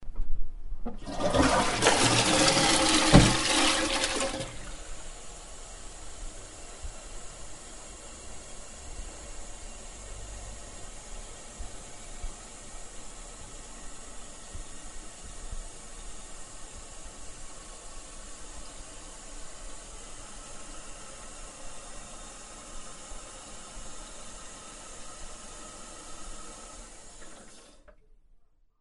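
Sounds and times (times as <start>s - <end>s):
washing: 0.8s - 5.6s, 16.2s - 27.9s.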